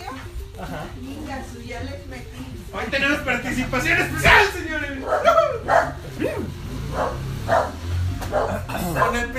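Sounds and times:
speech: 1.7 - 5.3
dog barking: 5.0 - 9.2.

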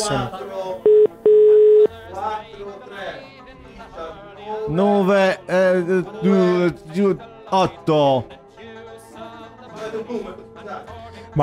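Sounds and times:
speech: 0.0 - 0.5, 4.7 - 8.4, 9.8 - 11.4
telephone dialing tones: 0.8 - 2.0.

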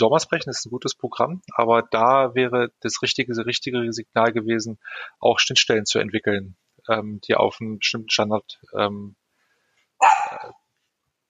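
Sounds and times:
speech: 0.0 - 9.2
dog barking: 10.0 - 10.5.

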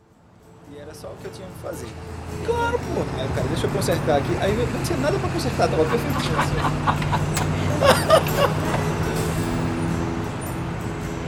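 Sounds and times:
idling vehicles at a gas station forecourt: 0.2 - 11.2
indistinct chatter at a gas station: 0.8 - 10.6
speech: 0.9 - 8.9
laughter: 3.0 - 9.0.

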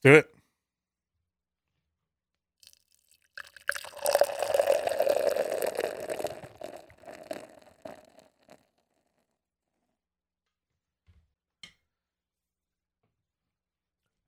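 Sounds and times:
speech: 0.0 - 0.3
beer glugging and splashing into a glass: 2.6 - 8.6.

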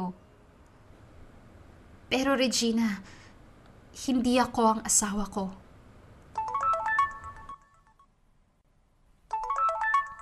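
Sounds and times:
speech: 2.1 - 3.2, 4.0 - 5.6
mobile phone ringtone with bright quick electronic melody: 6.4 - 8.1, 9.3 - 10.2.

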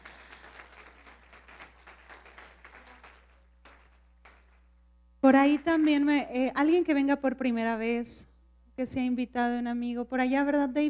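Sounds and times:
crowd applauding a guest at a religious gathering: 0.0 - 4.7
speech: 5.3 - 10.8.

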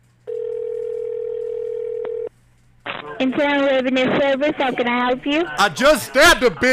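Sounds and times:
telephone dial tone while calling back: 0.3 - 2.3
speech: 3.2 - 6.7.

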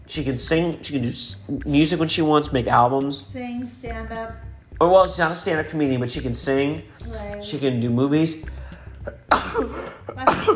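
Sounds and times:
speech: 0.1 - 10.5
person sneezing: 9.1 - 10.5.

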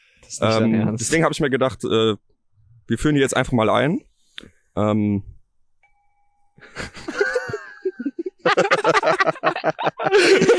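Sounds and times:
speech: 0.2 - 2.3, 2.9 - 5.3, 6.6 - 7.1, 8.5 - 10.5
handmade Tibetan singing bowl struck: 5.8 - 6.6
laughter: 6.7 - 10.5.

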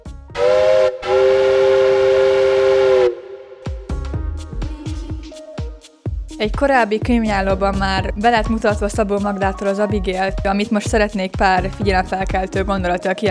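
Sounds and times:
steam whistle blaring: 0.3 - 3.9
steam train hissing bursts: 0.5 - 3.6
speech: 6.4 - 13.2.

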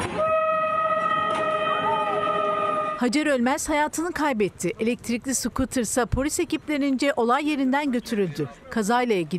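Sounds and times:
horn of approaching train blaring: 0.2 - 3.2
speech: 3.0 - 9.3.

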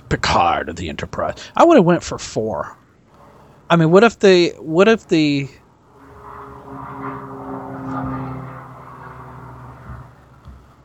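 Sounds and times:
speech: 0.1 - 2.8, 3.7 - 5.6
helicopter flying past: 2.2 - 10.8.

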